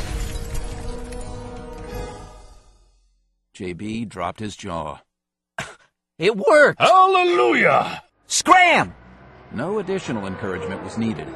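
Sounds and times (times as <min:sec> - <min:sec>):
glass shattering: 0:00.0 - 0:02.3
tinkling glass fragments: 0:00.0 - 0:02.6
speech: 0:03.6 - 0:05.1, 0:06.2 - 0:11.3.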